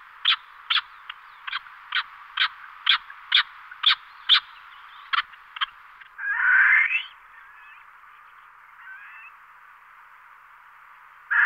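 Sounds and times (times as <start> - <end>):
Barbary partridge giving harsh rasping calls in Sardinia: 0.0 - 9.4, 11.2 - 11.4.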